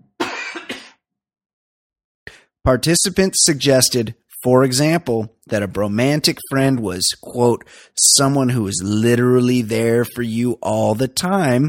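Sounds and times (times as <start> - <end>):
person coughing: 0.1 - 1.0
speech: 2.3 - 11.6.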